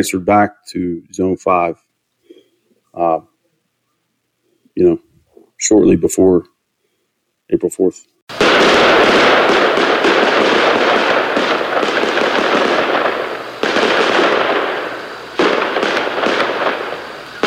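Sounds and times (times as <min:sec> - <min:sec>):
speech: 0:00.0 - 0:01.9, 0:02.9 - 0:03.3, 0:04.8 - 0:06.5, 0:07.5 - 0:09.7
rapid gunfire: 0:08.3 - 0:17.4.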